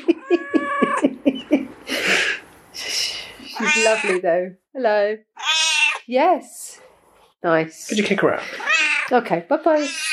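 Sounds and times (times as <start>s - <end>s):
laughter: 0.0s - 2.2s
cat hissing: 1.9s - 4.2s, 5.4s - 6.1s, 8.4s - 9.1s, 9.8s - 10.1s
cat meowing: 3.5s - 4.2s, 5.4s - 6.1s, 8.5s - 9.1s, 9.8s - 10.1s
speech: 3.8s - 5.4s, 6.1s - 6.6s, 7.4s - 10.1s.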